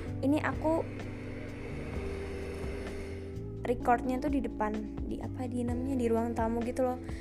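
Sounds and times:
motorcycle engine droning on a main road beside a house: 0.0s - 3.6s
speech: 0.2s - 1.1s, 3.7s - 7.1s.

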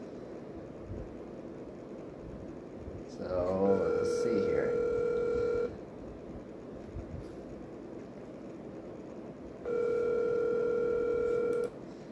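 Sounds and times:
speech: 3.2s - 4.8s
telephone tone as a call is placed: 3.5s - 5.8s, 9.6s - 11.8s.

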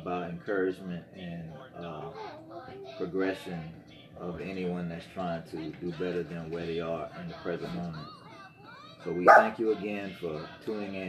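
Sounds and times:
speech: 0.4s - 2.2s, 3.0s - 8.1s, 9.0s - 11.0s
dog barking: 9.3s - 9.6s.

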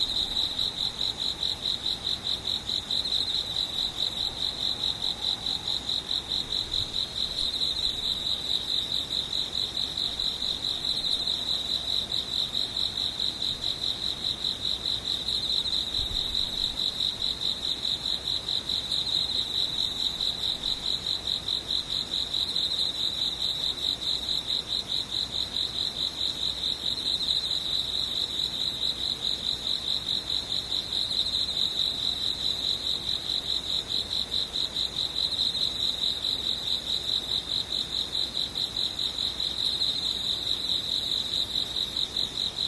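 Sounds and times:
cricket-like insects trilling: 0.0s - 42.6s.

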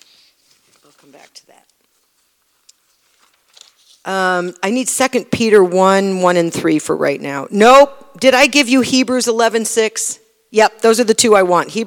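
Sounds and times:
paper notes rustling as someone searches: 0.4s - 4.1s
speech: 0.9s - 1.8s, 4.0s - 11.8s.

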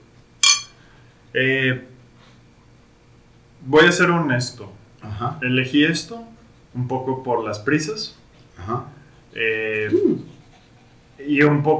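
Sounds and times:
glasses of Belgian-style wheat beer clinking in a toast: 0.4s - 0.8s
speech: 1.3s - 1.9s, 3.6s - 10.3s, 11.2s - 11.7s.

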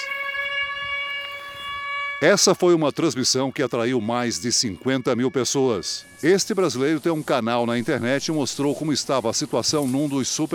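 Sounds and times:
air raid siren wailing: 0.0s - 9.5s
speech: 2.2s - 10.5s
rumble: 7.6s - 10.0s.

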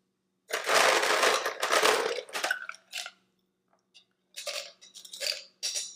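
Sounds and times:
ice cubes clattering into a glass: 0.5s - 3.2s, 4.4s - 5.9s.

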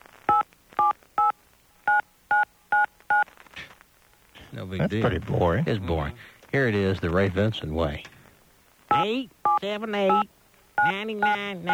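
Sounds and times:
touch-tone phone dialing dual-tone beeps: 0.3s - 1.3s, 1.9s - 3.2s, 8.9s - 11.7s
speech: 4.6s - 8.2s, 9.0s - 11.7s.

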